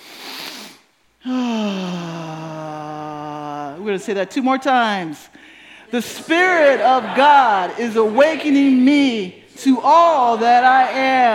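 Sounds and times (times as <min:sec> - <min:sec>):
worship gathering breathing in deeply together: 0:00.0 - 0:02.1, 0:05.3 - 0:06.0
speech: 0:03.9 - 0:05.3, 0:05.9 - 0:11.3
laughter: 0:05.8 - 0:11.3.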